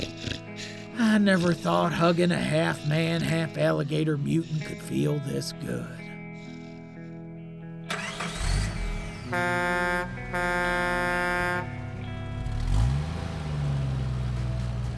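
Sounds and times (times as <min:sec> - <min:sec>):
speech: 0:01.1 - 0:06.0, 0:09.3 - 0:09.6
engine of a large blood-spattered truck starting and driving away: 0:07.9 - 0:14.9.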